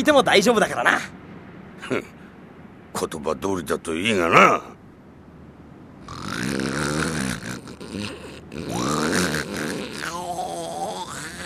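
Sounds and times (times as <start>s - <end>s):
speech: 0.0s - 1.2s, 1.8s - 2.2s, 3.0s - 4.7s
loud rumbling snoring: 6.0s - 11.4s.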